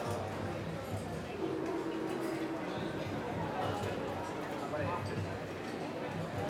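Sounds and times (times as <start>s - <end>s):
lively restaurant ambience: 0.0s - 6.4s.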